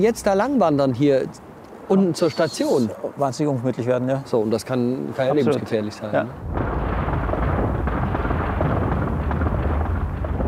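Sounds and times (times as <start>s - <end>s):
speech: 0.0s - 6.6s
rockfall tumbling down a mountainside: 6.4s - 10.4s.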